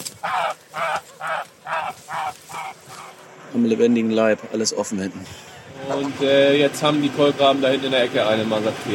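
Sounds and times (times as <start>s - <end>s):
geese honking: 0.0s - 3.3s, 5.8s - 6.3s
speech: 3.5s - 8.9s.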